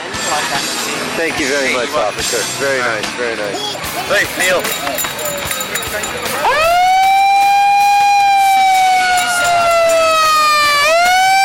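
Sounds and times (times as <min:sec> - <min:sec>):
speech: 0:01.2 - 0:06.8
emergency vehicle siren: 0:06.4 - 0:11.4.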